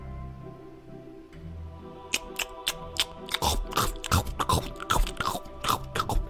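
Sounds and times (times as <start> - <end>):
wet smacking and chewing eating noises: 2.0 - 6.2.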